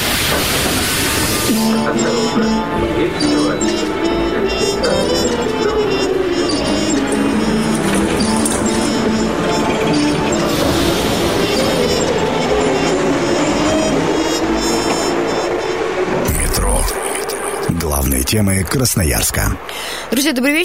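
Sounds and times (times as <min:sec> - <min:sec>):
subway train wheels squealing with a high metallic whine: 0:00.0 - 0:19.7
subway train rumbling: 0:00.0 - 0:20.6
speech: 0:01.6 - 0:05.7, 0:18.3 - 0:20.6.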